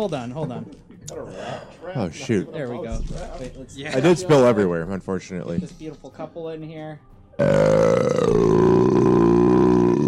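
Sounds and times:
speech: 0.0 - 9.3
person burping after drinking a ranch water: 7.4 - 10.0.

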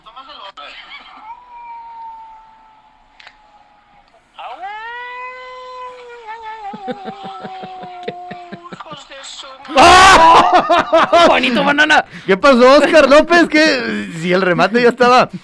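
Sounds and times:
person imitating an animal howl: 1.3 - 2.9, 4.5 - 8.7
laughter: 6.4 - 12.0
speech: 6.8 - 15.4.

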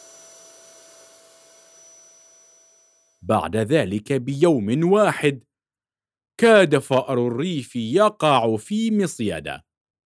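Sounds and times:
vacuum cleaner running: 0.0 - 2.9
speech: 3.2 - 5.5, 6.4 - 9.7.

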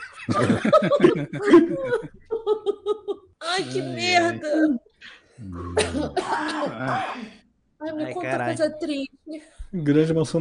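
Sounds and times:
laughter: 0.0 - 3.3
speech: 0.3 - 4.8, 5.4 - 10.4
hoarse raspy old-man-like cough after laughing: 5.5 - 7.4.

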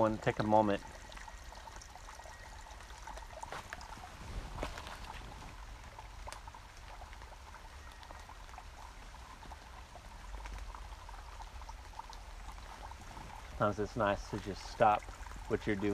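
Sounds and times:
speech: 0.0 - 1.0, 13.6 - 15.9
steady rain falling: 2.8 - 15.9.

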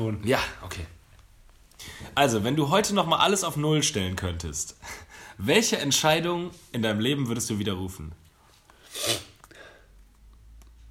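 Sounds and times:
speech: 0.0 - 1.0, 1.8 - 8.2, 9.0 - 9.3
person sniffing sharply through the nose: 8.8 - 9.8.

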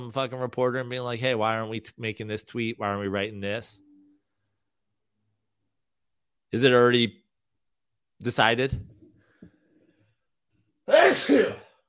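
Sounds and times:
speech: 0.1 - 3.9, 6.5 - 7.2, 8.2 - 8.9, 10.9 - 11.6
person sneezing: 10.9 - 11.7.

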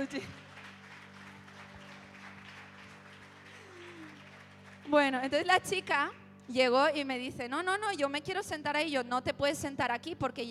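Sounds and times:
speech: 0.0 - 0.4, 4.9 - 10.4
audience applauding: 0.0 - 5.8.

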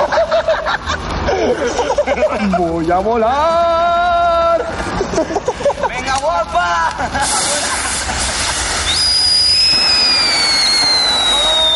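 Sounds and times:
laughter: 0.0 - 2.8, 4.6 - 6.2, 6.8 - 8.8
speech: 2.4 - 4.0, 5.2 - 5.6
firework rockets going off with a hissing roar: 7.1 - 11.7
shrill whistling tone: 8.8 - 11.7.

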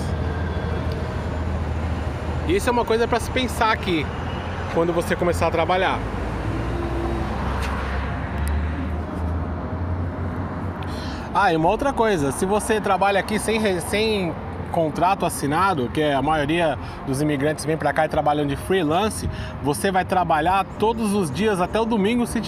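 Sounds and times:
bus rumbling past: 0.0 - 13.4
cars passing on a busy street: 0.0 - 22.4
speech: 2.5 - 6.2, 11.4 - 22.4.

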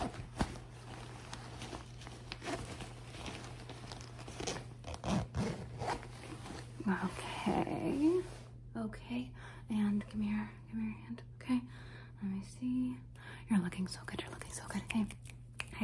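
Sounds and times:
clothing rustling: 0.0 - 8.6
shuffling movement: 0.0 - 8.6
zipper being pulled up: 2.4 - 6.7
speech: 6.9 - 15.8.

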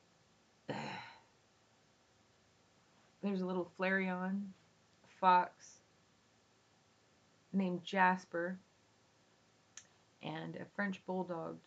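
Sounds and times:
person clearing throat: 0.7 - 1.2
speech: 3.2 - 4.6, 5.2 - 5.8, 7.5 - 8.7, 10.2 - 11.6.

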